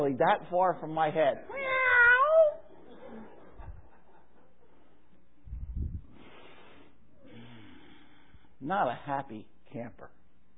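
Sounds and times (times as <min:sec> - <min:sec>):
speech: 0:00.0 - 0:01.7, 0:08.6 - 0:10.2
cat yowling outside a window at night: 0:01.5 - 0:02.7
faint low thumps: 0:05.4 - 0:06.1.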